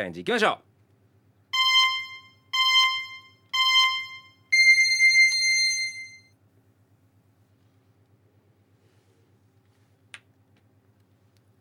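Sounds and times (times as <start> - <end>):
speech: 0.0 - 0.7
faint low hum: 0.0 - 11.5
electronic countdown beeps: 1.6 - 6.3.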